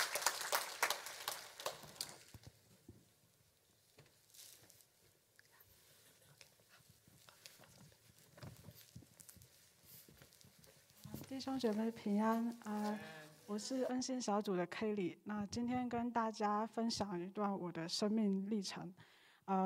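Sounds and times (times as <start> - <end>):
audience clapping: 0.0 - 2.4
speech: 11.3 - 19.6.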